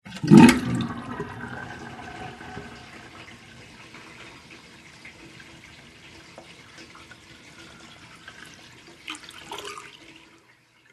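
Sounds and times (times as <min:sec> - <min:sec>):
sink: 0:00.0 - 0:10.9.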